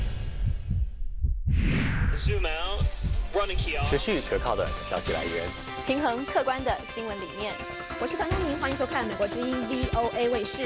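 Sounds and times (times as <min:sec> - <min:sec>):
swelling whoosh: 0:00.0 - 0:03.7
deep booming heartbeat: 0:00.0 - 0:04.1
speech: 0:02.2 - 0:10.6.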